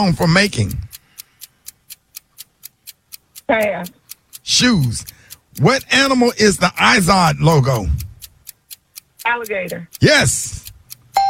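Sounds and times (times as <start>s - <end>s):
speech: 0.0s - 0.8s, 3.5s - 8.1s, 9.2s - 10.6s
quiz game timer clock ticking: 0.0s - 11.2s.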